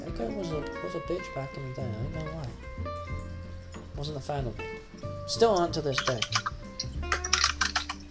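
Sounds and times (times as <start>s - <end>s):
speech: 0.2s - 3.2s, 4.0s - 6.5s
computer keyboard keys tapping as someone types to search: 5.9s - 8.0s.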